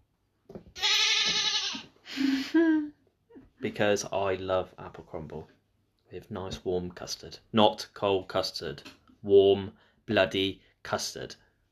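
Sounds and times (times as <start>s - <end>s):
goat bleating: 0.8s - 1.9s
speech: 3.6s - 11.4s.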